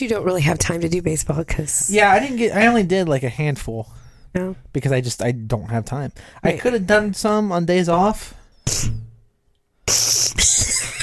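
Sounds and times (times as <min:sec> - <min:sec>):
speech: 0:00.0 - 0:09.0
person sniffling: 0:09.8 - 0:10.7
person sneezing: 0:09.9 - 0:10.8.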